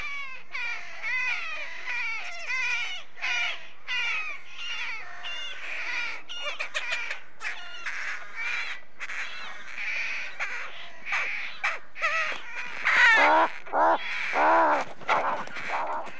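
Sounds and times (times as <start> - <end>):
rook colony cawing and croaking at a breeding colony: 0.0 - 16.1.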